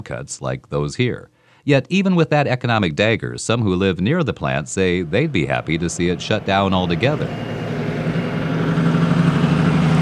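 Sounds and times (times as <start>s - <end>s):
speech: 0.0s - 7.7s
steady road noise: 4.1s - 9.9s
heavy trucks passing near a steel plant in River Rouge, Michigan: 4.4s - 9.9s.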